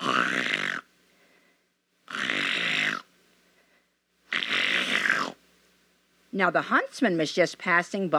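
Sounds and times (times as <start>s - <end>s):
wolf snoring asleep on a bed: 0.0s - 0.9s, 2.1s - 3.1s, 4.3s - 5.4s
speech: 6.4s - 8.1s.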